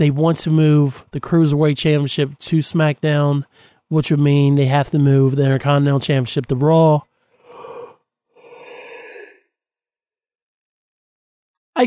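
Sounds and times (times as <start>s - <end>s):
speech: 0.0s - 7.1s
person yawning with a soft voiced groan: 7.4s - 9.5s.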